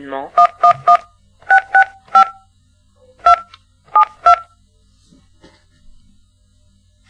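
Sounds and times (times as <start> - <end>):
touch-tone telephone keypad DTMF tones dialing a customer number: 0.4 - 2.4, 3.2 - 4.5.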